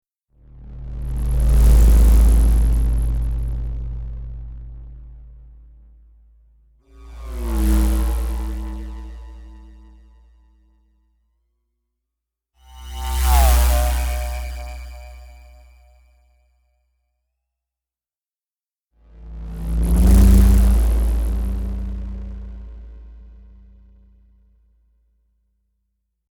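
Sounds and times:
futuristic vehicle or spacecraft passing: 0.4 - 6.2, 6.9 - 10.4, 12.7 - 15.8, 19.1 - 23.9.

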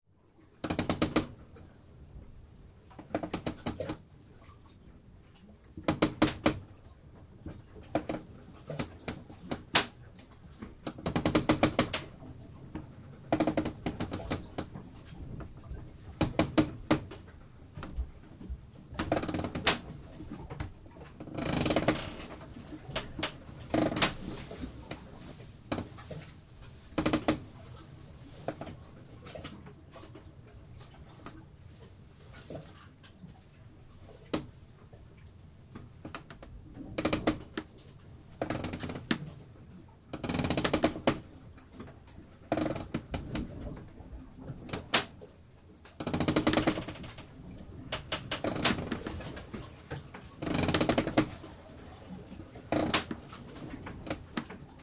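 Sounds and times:
wood creaking on a stationary galleon tall ship: 0.6 - 1.4, 3.0 - 4.0, 5.8 - 6.7, 7.4 - 10.0, 10.6 - 29.4, 36.0 - 37.7, 38.4 - 39.3, 40.1 - 41.2, 42.5 - 43.9, 46.0 - 51.6, 52.5 - 54.8
background water lapping against a galleon tall ship: 3.0 - 35.3, 37.8 - 54.8.

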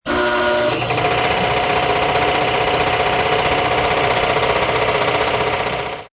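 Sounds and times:
medium size air compressor being started: 0.0 - 6.1.

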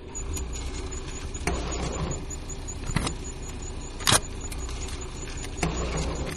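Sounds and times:
automated bank machine electronic sounds: 0.1 - 6.3.

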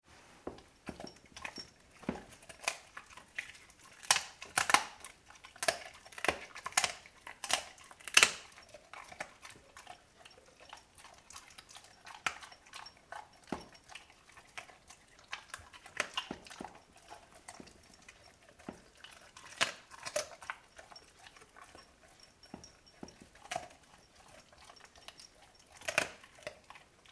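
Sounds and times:
Labrador dog eating chicken bones: 0.5 - 27.0.

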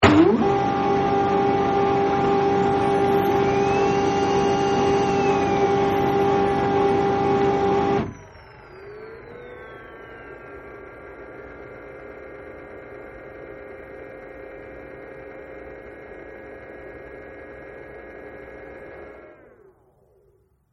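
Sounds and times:
printer servos moving and humming: 0.0 - 14.4
printer turned on startup sequence: 0.0 - 19.7.

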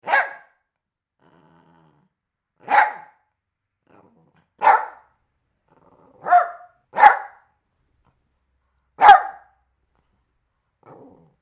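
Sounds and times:
dog barking: 0.0 - 0.7, 2.6 - 3.3, 4.6 - 5.1, 6.2 - 7.5, 9.0 - 9.6
faint low dog growling: 1.2 - 2.2, 3.8 - 4.6, 5.6 - 6.4, 10.8 - 11.4.

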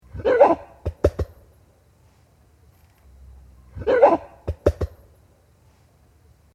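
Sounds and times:
gorilla giving a short hoarse bark: 0.1 - 1.2, 3.7 - 4.9
gorilla pounding its chest with hollow thumps: 0.8 - 1.4, 4.4 - 5.0.

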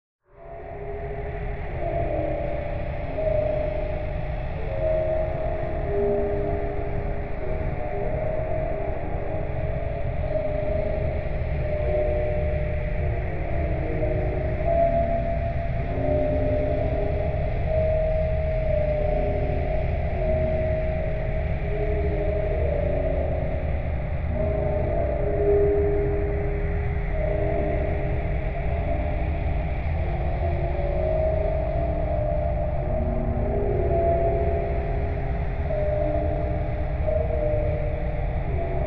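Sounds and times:
dark musical warble drone: 0.3 - 38.8.

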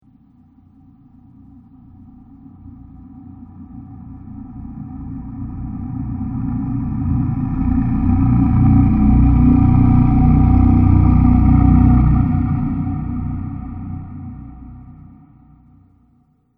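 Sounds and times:
horror soundscape: 3.0 - 15.8.

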